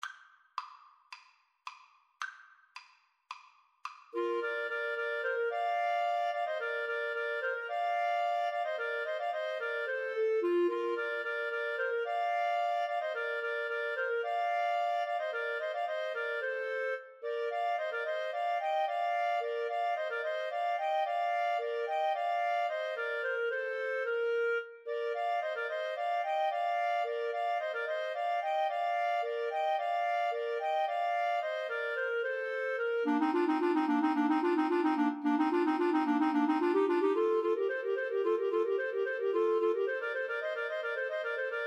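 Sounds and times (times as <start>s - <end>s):
clarinet trio playing: 4.2s - 41.6s.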